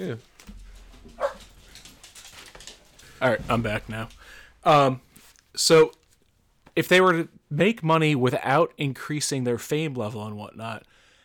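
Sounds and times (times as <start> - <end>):
speech: 0.0 - 0.4, 3.2 - 6.0, 6.8 - 11.0
dog barks: 1.2 - 1.5.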